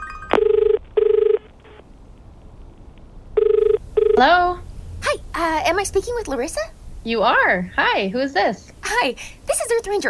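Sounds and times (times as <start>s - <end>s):
telephone ringing after a call is dialed: 0.0s - 1.8s, 3.4s - 4.3s
speech: 4.2s - 4.6s, 5.4s - 10.0s.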